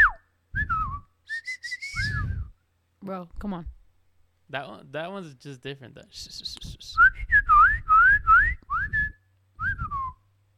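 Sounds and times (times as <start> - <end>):
person whistling a short wavering tune: 0.0 - 2.5, 7.0 - 10.2
speech: 3.1 - 3.8, 4.5 - 9.0.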